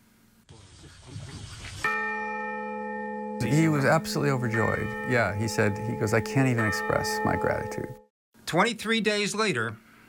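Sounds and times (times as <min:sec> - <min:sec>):
large bell struck once at its installation ceremony: 0:01.9 - 0:08.1
speech: 0:03.4 - 0:09.8.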